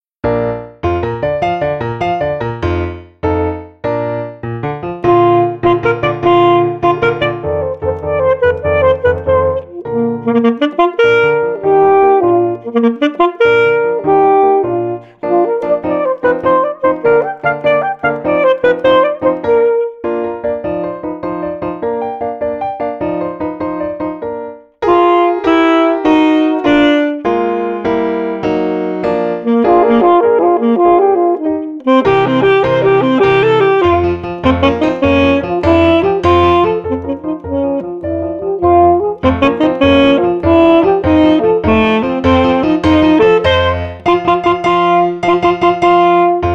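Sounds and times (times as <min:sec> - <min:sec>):
piano accompaniment: 0:00.2 - 0:46.5
woodwind solo at performance tempo: 0:05.0 - 0:20.4, 0:24.8 - 0:28.3, 0:29.0 - 0:46.5.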